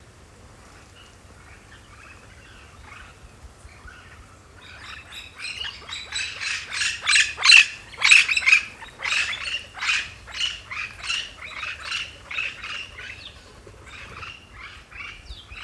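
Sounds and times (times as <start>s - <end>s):
yellow shouldered parrot flight call: 5.8s - 14.4s.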